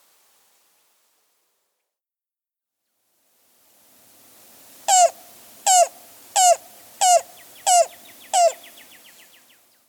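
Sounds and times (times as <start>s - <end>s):
Yellow-billed cuckoo calling: 4.7s - 9.7s.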